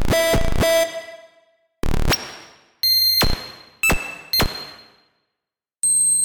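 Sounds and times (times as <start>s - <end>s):
beeps: 0.2s - 1.4s, 2.9s - 4.8s.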